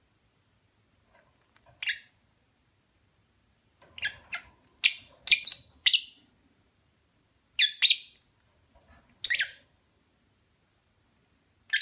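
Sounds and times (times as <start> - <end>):
lovebird sharp high chirps as mating call: 4.0 - 6.2, 7.6 - 8.2, 9.2 - 9.6, 11.7 - 11.8.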